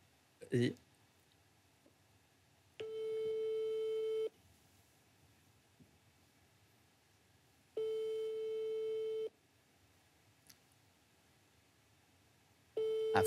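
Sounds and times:
phone call ringback tone on speakerphone: 2.8s - 4.3s, 7.8s - 9.3s, 12.8s - 13.2s.

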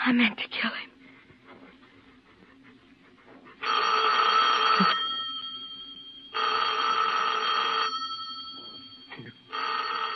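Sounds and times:
speech: 0.0s - 0.9s
telephone bell ringing: 3.6s - 10.1s.

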